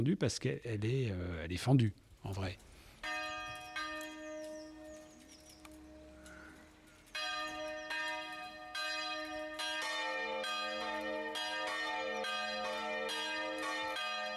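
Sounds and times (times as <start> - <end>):
speech: 0.0 - 2.7
church bells ringing: 3.0 - 14.3.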